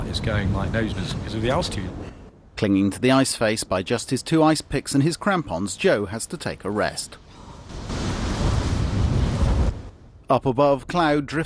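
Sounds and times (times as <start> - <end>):
strong wind whipping loose powder snow about a mountain rock face: 0.0 - 2.2, 7.4 - 10.1
speech: 0.1 - 7.9, 10.3 - 11.4.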